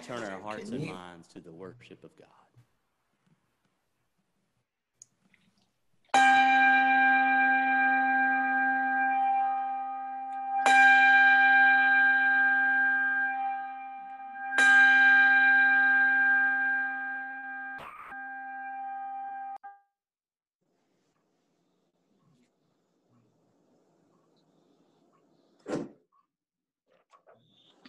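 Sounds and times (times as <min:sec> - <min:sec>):
speech: 0:00.1 - 0:02.6
church bell tolling to begin a worship service: 0:06.2 - 0:19.6.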